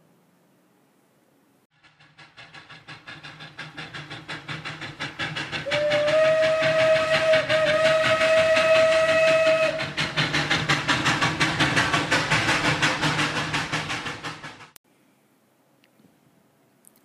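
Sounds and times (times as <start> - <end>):
train wheels clattering on rails: 1.7 - 14.8
train whistle blast: 5.6 - 10.0.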